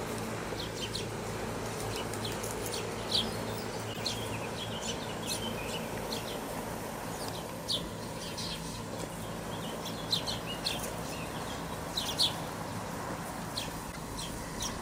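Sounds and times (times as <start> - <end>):
steady low rumbling background noise: 0.0 - 14.8
house sparrow (Passer domesticus) chirps in Ljubljana: 0.4 - 14.8.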